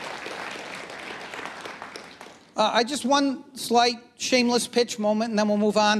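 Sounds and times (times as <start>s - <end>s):
crowd applauding: 0.0s - 2.6s
speech: 2.6s - 5.9s.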